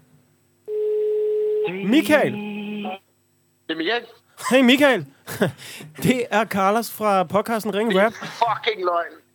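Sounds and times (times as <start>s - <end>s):
telephone ringback tone during outgoing call: 0.7s - 1.7s
speech: 1.7s - 2.4s, 3.7s - 9.3s
laughter: 5.3s - 6.0s, 7.8s - 8.7s.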